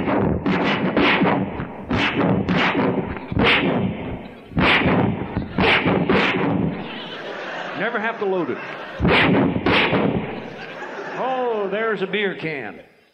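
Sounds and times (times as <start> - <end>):
rapid gunshots from a western-style gun: 0.0 - 7.2, 9.0 - 10.7
laughter: 5.2 - 12.9
speech: 7.9 - 9.4, 11.7 - 12.9.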